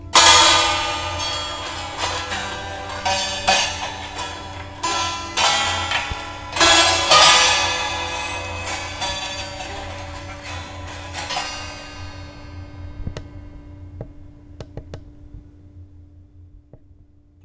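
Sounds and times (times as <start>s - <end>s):
santoor: 0.0s - 13.7s.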